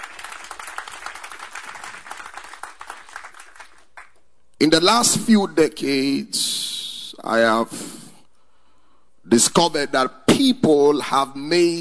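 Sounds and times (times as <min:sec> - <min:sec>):
large congregation clapping hands: 0:00.0 - 0:04.3
speech: 0:04.6 - 0:08.0, 0:09.3 - 0:11.7.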